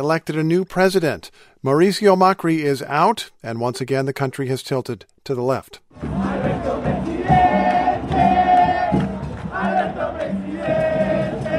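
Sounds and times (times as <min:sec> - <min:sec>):
speech: 0:00.0 - 0:06.7
crowd in Buenos Aires chanting to celebrate a newly elected president: 0:06.0 - 0:11.5.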